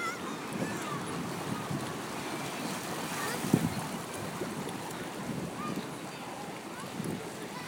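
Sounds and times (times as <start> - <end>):
loud water splash: 0.0 - 5.7
rapids surging through a gap down steps: 0.0 - 7.6.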